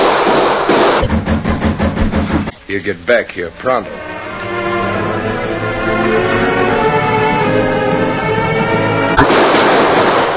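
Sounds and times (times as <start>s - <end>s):
gunshots in a quick exchange of gunfire: 0.0s - 1.8s, 9.2s - 10.3s
steady musical underscore: 1.6s - 9.3s
speech: 2.7s - 4.6s.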